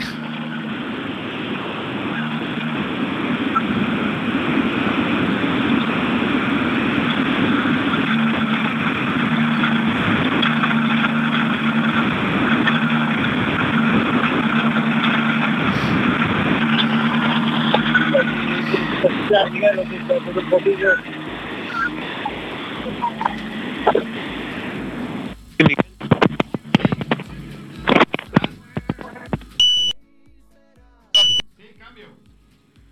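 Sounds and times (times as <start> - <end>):
rally car engine idling: 0.0 - 29.6
indistinct voices: 0.0 - 30.0, 31.2 - 32.3.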